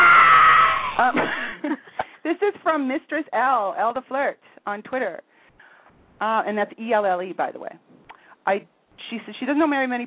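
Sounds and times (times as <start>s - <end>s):
loud high-pitched scream: 0.0s - 1.2s
speech: 2.4s - 5.3s, 6.2s - 7.8s, 8.4s - 10.0s.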